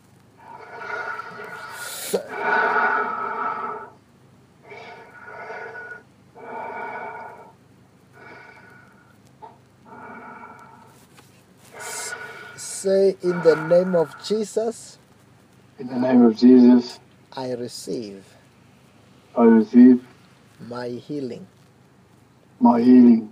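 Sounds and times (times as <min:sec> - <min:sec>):
caller breathing heavily through the mouth over a telephone line: 0:00.4 - 0:04.0, 0:04.6 - 0:14.6
speech: 0:12.8 - 0:15.0, 0:15.8 - 0:18.3, 0:19.4 - 0:21.6, 0:22.6 - 0:23.3.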